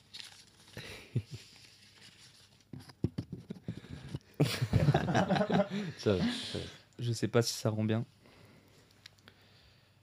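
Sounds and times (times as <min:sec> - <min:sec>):
small piece of paper rustling and crinkling: 0:00.0 - 0:03.5
laughter: 0:04.4 - 0:06.5
speech: 0:05.2 - 0:08.2.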